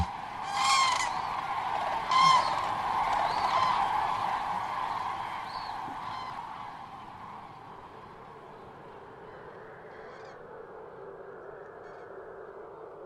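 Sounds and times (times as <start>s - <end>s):
flock of migrating geese honking in flight: 0.0s - 7.1s
steady rushing wind or air: 0.0s - 11.4s.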